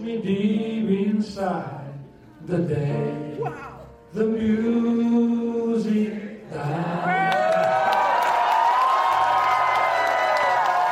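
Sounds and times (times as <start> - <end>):
speech: 0.0 - 1.8, 2.4 - 7.3
enthusiastic audience cheering and whooping after a song: 6.9 - 10.8.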